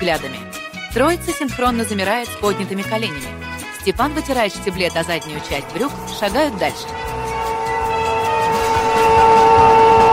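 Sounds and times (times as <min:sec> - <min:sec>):
speech: 0:00.0 - 0:07.2
steam train arriving at a station platform amid thick steam: 0:04.9 - 0:10.1.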